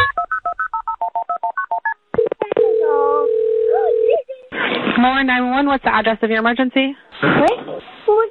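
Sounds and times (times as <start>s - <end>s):
touch-tone dialing beeps of a phone call: 0.0s - 4.2s
speech: 5.0s - 8.0s.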